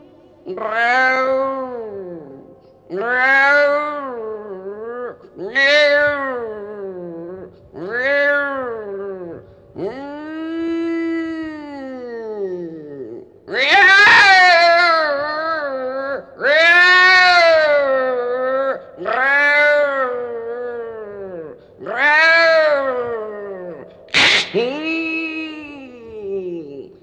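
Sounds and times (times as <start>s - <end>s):
voice imitating a cat yowling while pouncing on a mouse: 0.4s - 26.9s.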